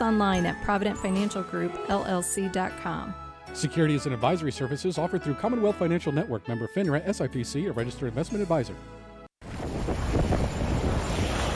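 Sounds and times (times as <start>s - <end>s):
speech: 0.1s - 9.0s
winter storm wind buffeting a microphone: 9.4s - 11.5s.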